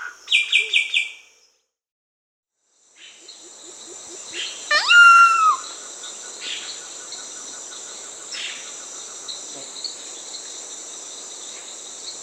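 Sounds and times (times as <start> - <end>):
steady insect drone: 2.6 - 12.2
Solitary Cacique call: 4.1 - 5.8.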